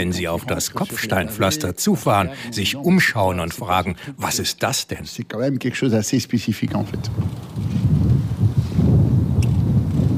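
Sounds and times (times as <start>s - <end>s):
speech: 0.0s - 8.0s
strong wind buffeting the microphone on a former Formula 1 race circuit: 6.7s - 10.1s.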